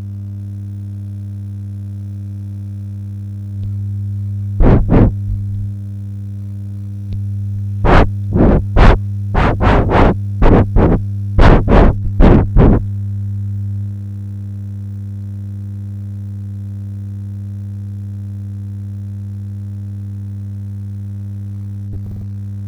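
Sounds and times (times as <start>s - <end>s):
Famicom buzz: 4.6s - 5.3s, 7.9s - 12.9s.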